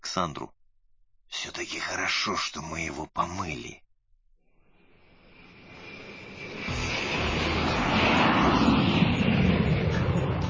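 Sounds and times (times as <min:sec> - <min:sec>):
speech: 0:00.2 - 0:00.6, 0:01.4 - 0:03.8
Tu-134 jet airliner engines roaring: 0:04.8 - 0:10.4.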